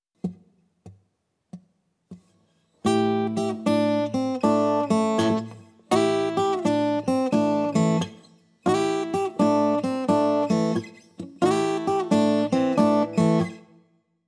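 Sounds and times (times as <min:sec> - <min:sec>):
blues rock guitar in open tunings: 0:02.9 - 0:13.6.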